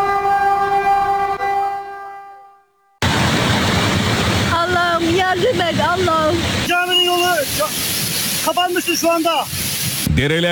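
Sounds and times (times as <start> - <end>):
train horn-like tonal lines: 0.0 - 2.9
high-speed train passing at speed: 3.0 - 10.1
dense rushing noise: 3.0 - 10.2
speech: 8.5 - 9.6, 10.2 - 10.4.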